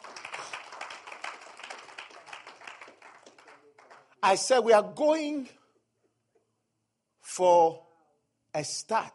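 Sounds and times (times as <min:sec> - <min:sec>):
audience clapping hands: 0:00.0 - 0:04.2
speech: 0:04.2 - 0:05.6, 0:07.4 - 0:07.8, 0:08.5 - 0:09.1.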